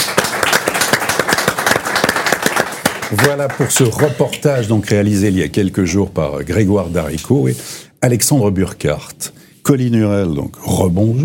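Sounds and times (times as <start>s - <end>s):
small audience applause: 0.0s - 4.7s
speech: 3.1s - 11.2s.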